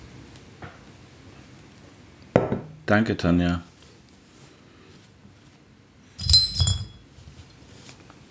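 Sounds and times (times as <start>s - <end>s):
speech: 2.9s - 3.7s
glass beer bottles clinking as drinks are served: 6.2s - 7.0s.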